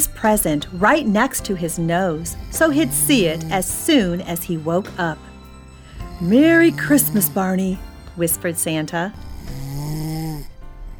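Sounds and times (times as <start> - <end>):
speech: 0.0 - 5.3, 6.2 - 9.6
loud snoring: 2.2 - 4.4, 5.9 - 8.1, 9.1 - 10.9.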